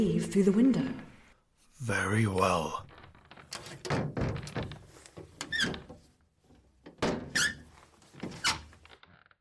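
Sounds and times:
speech: 0.0s - 1.1s, 1.8s - 2.9s
old door creaking in an old house: 2.1s - 9.3s.

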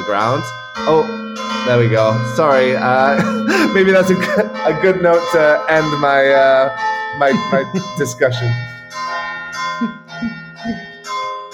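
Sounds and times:
church bells pealing: 0.0s - 11.5s
speech: 0.1s - 8.7s, 9.8s - 10.8s
laughter: 2.7s - 6.0s, 7.2s - 8.5s.

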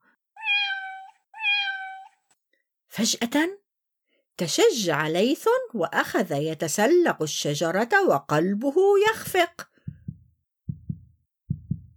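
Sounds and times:
kitten meowing: 0.4s - 2.2s
speech: 3.0s - 3.6s, 4.4s - 9.7s.

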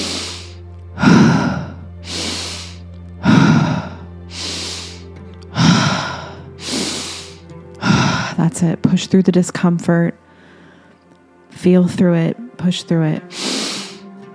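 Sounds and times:
rhythmic deep breathing during breathing exercise: 0.0s - 9.0s, 10.2s - 11.4s, 13.1s - 14.3s
speech: 8.5s - 10.2s, 11.6s - 13.4s.

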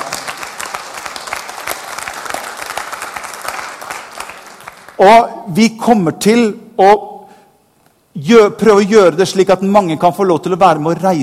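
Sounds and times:
crowd applauding: 0.0s - 5.0s
speech: 5.0s - 7.1s, 8.2s - 11.2s.

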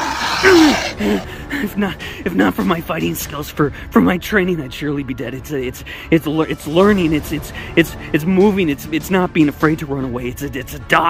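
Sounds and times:
guttural growls of inhuman monsters: 0.0s - 1.4s
speech: 0.4s - 11.0s.

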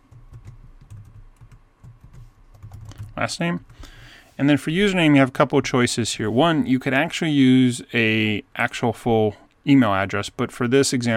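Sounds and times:
typing on a computer keyboard while filling in an account sign-up form: 0.0s - 3.8s
speech: 3.2s - 3.7s, 4.4s - 11.1s.

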